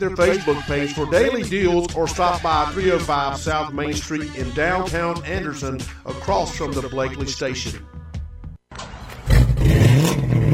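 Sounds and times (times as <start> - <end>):
speech: 0.0 - 7.9
car engine cranking and revving through custom exhaust: 8.8 - 10.5.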